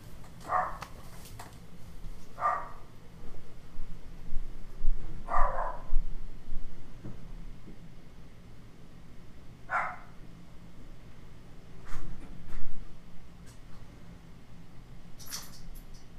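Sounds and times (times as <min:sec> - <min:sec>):
steady low hum: 0:00.0 - 0:16.1
dogs barking: 0:00.4 - 0:00.9, 0:02.4 - 0:02.9, 0:05.2 - 0:05.9, 0:09.7 - 0:10.2.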